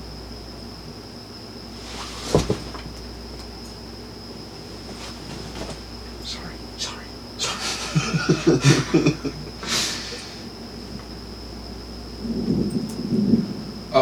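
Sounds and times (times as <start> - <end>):
laughter: 7.4 - 10.4
thunder rumbling: 10.8 - 14.0.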